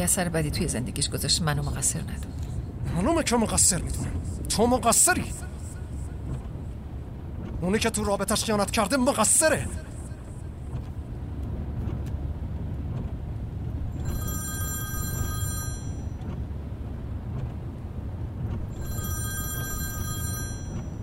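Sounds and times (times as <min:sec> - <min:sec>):
speech: 0:00.0 - 0:05.6, 0:07.6 - 0:09.9
low rumble: 0:00.0 - 0:21.0
telephone ringing: 0:14.0 - 0:16.2, 0:18.7 - 0:21.0.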